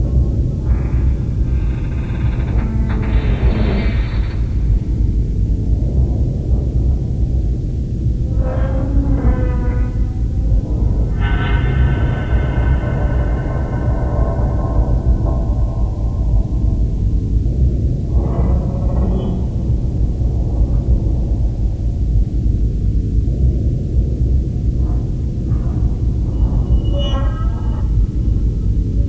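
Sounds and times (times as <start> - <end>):
ambient rumble: 0.0 - 29.0
creaking: 0.1 - 5.2, 8.0 - 21.6, 25.0 - 29.0.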